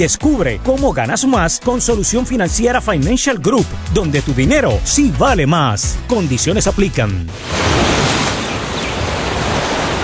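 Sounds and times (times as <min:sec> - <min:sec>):
speech: 0:00.0 - 0:08.2
ocean surf at the seaside: 0:07.3 - 0:10.0.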